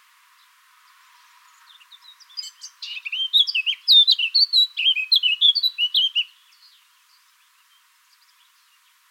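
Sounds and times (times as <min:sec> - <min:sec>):
Eurasian blackcap Sylvia atricapilla song: 0:00.4 - 0:09.0.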